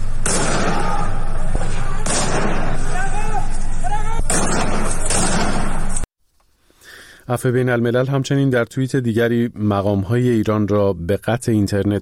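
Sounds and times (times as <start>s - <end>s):
gunshots at residential houses: 0.0s - 3.2s, 4.2s - 6.0s
noisy outdoor background: 0.0s - 12.0s
people calling out: 0.5s - 4.4s
speech: 7.3s - 12.0s.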